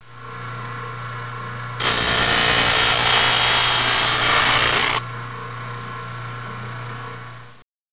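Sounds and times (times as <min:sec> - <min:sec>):
sander: 0:01.8 - 0:05.0.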